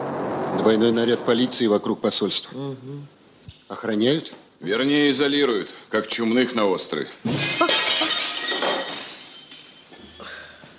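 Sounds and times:
speech: 0:00.6 - 0:07.8
pane of window glass smashing from a thrown stone: 0:07.3 - 0:10.1
falling glass shards tinkling: 0:07.4 - 0:10.4.

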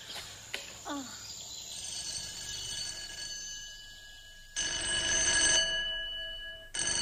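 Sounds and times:
telephone bell ringing with a long rattling ring: 0:01.7 - 0:06.9.

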